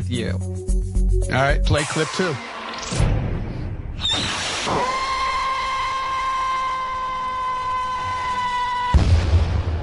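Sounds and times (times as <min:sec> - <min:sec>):
speech: 0:00.1 - 0:03.2, 0:04.0 - 0:05.0
steady high-pitched firework whistle: 0:04.0 - 0:09.0
sharp explosive firework bang: 0:08.9 - 0:09.8.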